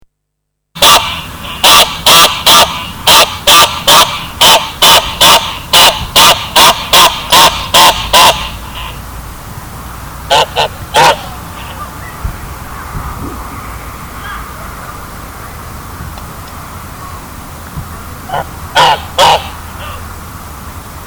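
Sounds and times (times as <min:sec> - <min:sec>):
goose in an emergency: 0:00.8 - 0:09.0, 0:10.3 - 0:13.6, 0:14.2 - 0:15.6, 0:18.3 - 0:20.1.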